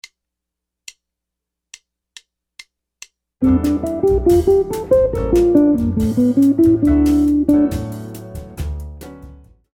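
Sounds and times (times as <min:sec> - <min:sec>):
Brazilian jazz guitar licks: 0:03.4 - 0:08.6.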